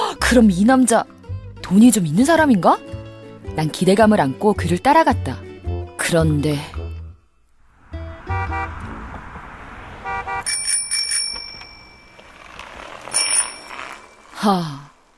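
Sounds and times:
speech: 0.3 - 2.9, 3.5 - 5.5, 6.1 - 6.8, 14.4 - 14.8
bicycle bell ringing in Hong Kong: 10.4 - 14.4.

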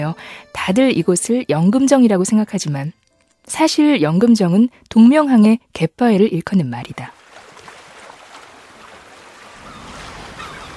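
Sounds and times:
speech: 0.0 - 7.2
surf washing over rounded coastal rocks: 7.2 - 10.7.

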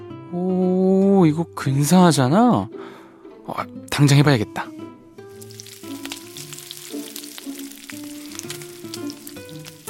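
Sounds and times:
speech: 0.3 - 0.6, 1.2 - 4.7
eggs frying in leftover bacon grease in a frying pan: 5.2 - 9.8.

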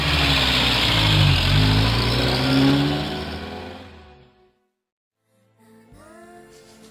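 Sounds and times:
truck engine accelerating as the truck pulls away: 0.0 - 4.4.

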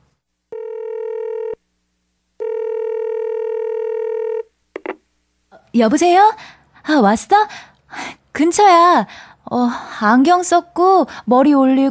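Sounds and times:
telephone ringback tone: 0.5 - 1.6, 2.4 - 4.5
speech: 5.8 - 11.8.

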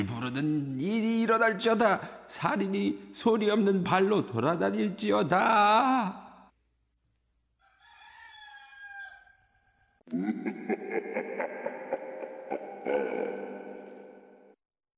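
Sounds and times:
speech: 0.0 - 6.2, 10.1 - 11.1
rooster crowing in the distance: 7.6 - 9.9
laughter: 10.1 - 14.2.

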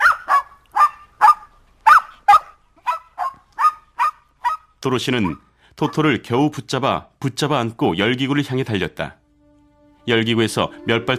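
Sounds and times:
small dog barking at a cat: 0.0 - 4.7
speech: 4.8 - 9.2, 10.1 - 11.1.

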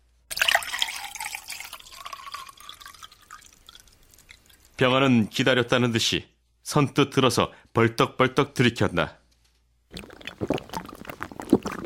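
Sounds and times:
drink pouring into a glass: 0.3 - 4.8, 9.9 - 11.8
speech: 4.8 - 9.2.

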